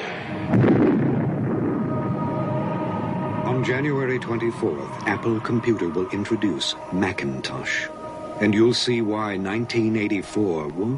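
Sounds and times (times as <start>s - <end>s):
screen exploding after being struck by a thrown oversized hammer: 0.0s - 2.3s
speech: 3.6s - 10.9s.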